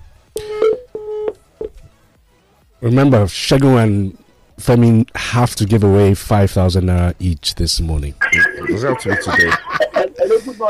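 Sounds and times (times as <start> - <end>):
telephone dialing tones: 0.4 - 1.7
speech: 2.8 - 10.6
laughter: 8.2 - 10.6.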